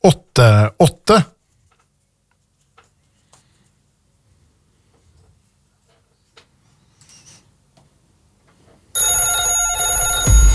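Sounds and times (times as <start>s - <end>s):
speech: 0.0s - 1.3s
telephone ringing with a bright electronic trill: 9.0s - 10.5s.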